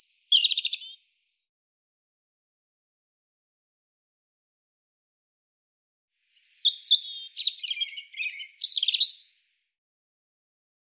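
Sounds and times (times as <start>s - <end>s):
European robin song: 0.0s - 1.1s, 6.3s - 9.5s.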